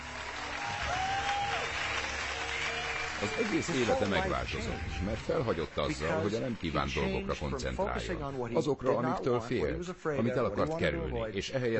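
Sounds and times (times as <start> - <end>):
large audience applauding: 0.0 - 7.2
speech: 3.2 - 11.7.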